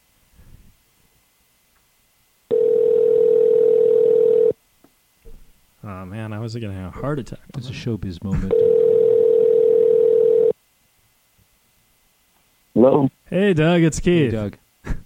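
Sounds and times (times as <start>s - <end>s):
electronic ringback tone of an outgoing phone call: 2.5s - 4.6s, 8.5s - 10.6s
speech: 6.4s - 8.8s, 12.8s - 14.6s.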